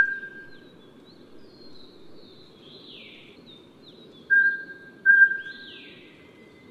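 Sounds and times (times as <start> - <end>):
mountain scops owl whistling at Yushan: 0.0 - 0.6, 4.3 - 5.9
faint high chirps from other birds: 0.0 - 6.6.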